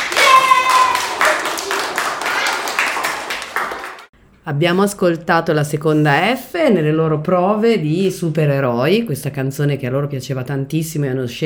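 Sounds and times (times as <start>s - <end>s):
audience clapping for children who sang a song: 0.0s - 4.1s
speech: 4.5s - 11.4s.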